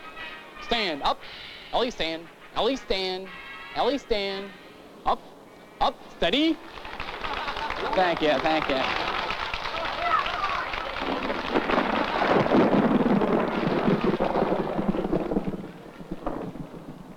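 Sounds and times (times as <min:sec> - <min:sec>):
speech: 0:00.7 - 0:09.1
laughter: 0:06.8 - 0:09.8, 0:11.6 - 0:12.5
distant thunder rumbling: 0:10.9 - 0:17.1.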